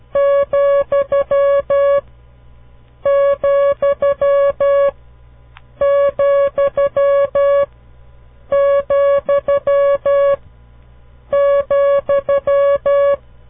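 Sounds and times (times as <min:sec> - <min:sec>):
Morse code tone keying the comma: 0:00.2 - 0:02.0, 0:03.1 - 0:04.9, 0:05.8 - 0:07.7, 0:08.5 - 0:10.4, 0:11.3 - 0:13.2.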